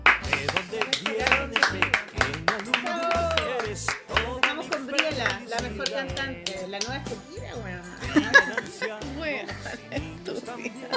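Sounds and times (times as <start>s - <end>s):
applause: 0.0s - 7.0s
laughter: 0.4s - 5.7s, 8.0s - 10.9s.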